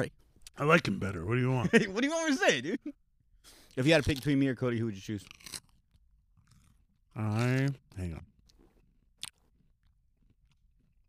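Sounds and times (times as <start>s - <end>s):
speech: 0.0s - 5.5s, 7.2s - 8.3s
wet chewing of soft crunchy food: 3.6s - 4.4s, 5.1s - 11.0s.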